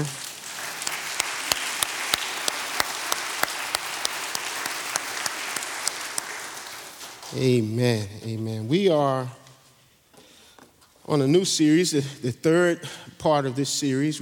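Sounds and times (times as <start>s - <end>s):
audience clapping hands in praise: 0.0s - 7.3s
speech: 7.3s - 9.4s, 11.1s - 14.2s.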